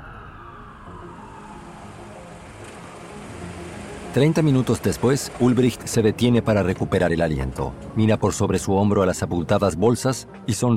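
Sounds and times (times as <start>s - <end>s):
distant police sirens wailing: 0.0s - 5.5s
speech: 4.2s - 10.7s.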